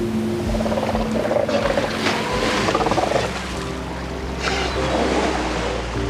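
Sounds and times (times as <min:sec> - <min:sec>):
young sea lions sparring, calling and grunting: 0:00.1 - 0:06.0.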